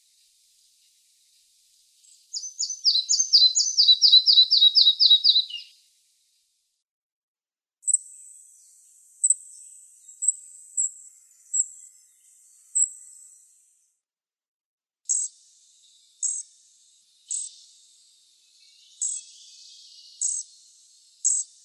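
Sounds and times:
Red-breasted flycatcher song of descending high whistled notes: 2.3s - 5.7s.

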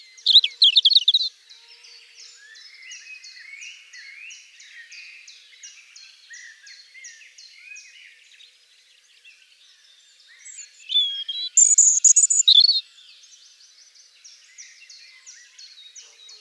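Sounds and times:
European robin singing: 0.0s - 1.3s, 10.4s - 12.8s
high twittering: 0.3s - 1.3s, 11.0s - 12.8s.

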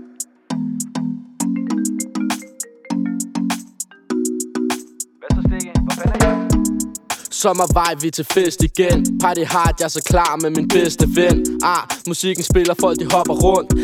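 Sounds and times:
melodic phone ringtone of plucked-sounding notes: 1.4s - 4.7s, 6.0s - 7.1s
speech: 5.6s - 13.8s.

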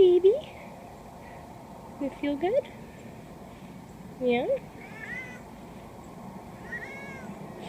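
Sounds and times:
speech: 2.2s - 2.8s, 4.2s - 4.8s
stray cat meowing: 4.8s - 5.5s, 6.6s - 7.5s.

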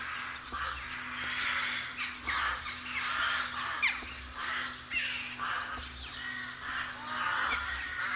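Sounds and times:
rook colony cawing: 0.0s - 8.1s
steady background hum: 0.0s - 8.1s.

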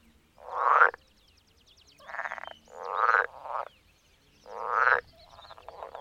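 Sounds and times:
Pool frog Pelophylax lessonae giving harsh buzzing croaks: 0.4s - 1.0s, 2.0s - 3.7s, 4.4s - 6.0s.

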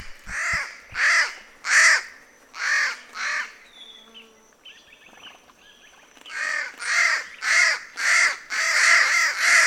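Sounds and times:
Palm crow Corvus palmarum giving hoarse nasal caws: 0.3s - 3.5s, 6.3s - 9.6s.

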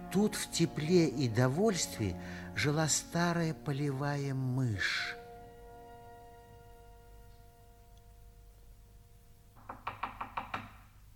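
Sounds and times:
sustained musical tones: 0.0s - 9.5s
speech: 0.1s - 5.2s
knocking on a door: 9.6s - 10.9s.

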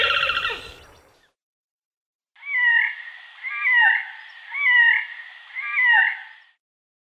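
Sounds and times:
horned grebe Podiceps auritus calling: 0.0s - 1.2s, 2.4s - 6.6s.

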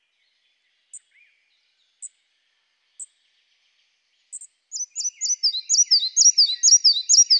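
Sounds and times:
red-breasted flycatcher Ficedula parva ticks and whistled notes: 4.3s - 7.3s.

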